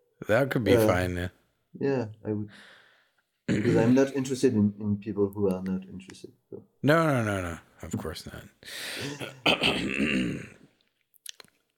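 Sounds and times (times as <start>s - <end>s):
speech: 0.2s - 2.8s, 3.5s - 10.6s
raspy cough: 3.5s - 4.2s, 9.0s - 10.6s.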